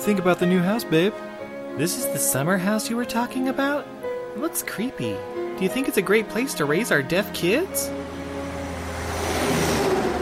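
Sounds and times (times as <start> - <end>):
speech: 0.0 - 8.2
heavy trucks rumbling past a house: 5.2 - 10.1.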